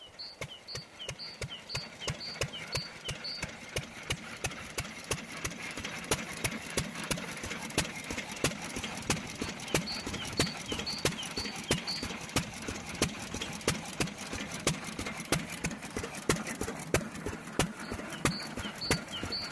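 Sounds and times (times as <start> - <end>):
early tractor engine chugging: 0.0 - 19.5.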